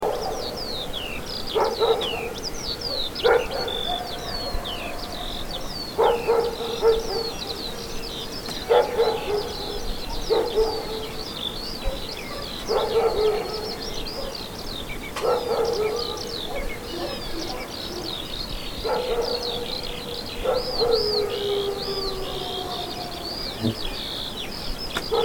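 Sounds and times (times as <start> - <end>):
bird sounds: 0.0 - 25.2
dog: 1.5 - 2.3, 2.9 - 7.6, 8.7 - 11.2, 11.8 - 14.4, 15.2 - 18.2, 18.8 - 21.5.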